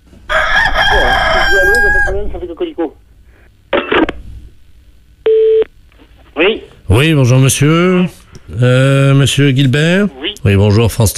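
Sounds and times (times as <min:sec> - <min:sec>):
rooster crowing: 0:00.3 - 0:02.3
steady electronic telephone tone: 0:05.2 - 0:05.7
speech: 0:06.4 - 0:11.1.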